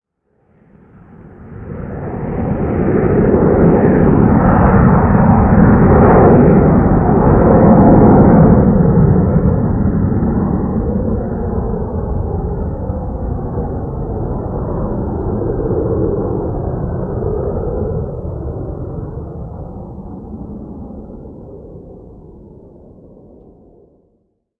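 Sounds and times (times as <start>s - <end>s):
jet flyover: 0.3s - 24.1s.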